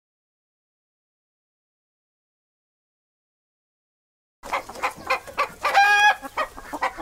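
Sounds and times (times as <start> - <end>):
animal noises: 4.5 - 7.0.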